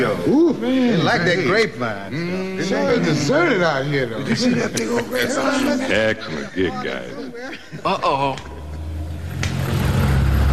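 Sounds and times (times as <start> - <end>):
speech: 0.1 - 8.5
laughter: 2.7 - 8.8
bus engine rumble as the bus pulls away: 8.5 - 10.5.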